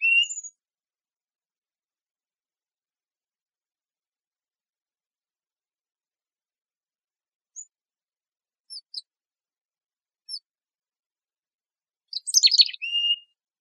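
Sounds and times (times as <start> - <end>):
mountain chickadee calling in Arizona: 12.1 - 13.2.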